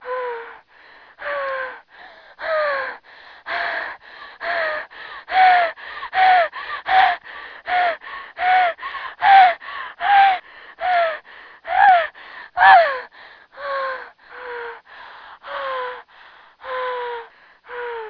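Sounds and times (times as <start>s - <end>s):
woman moaning in pleasure during orgasm: 0.0s - 0.6s, 2.4s - 18.0s.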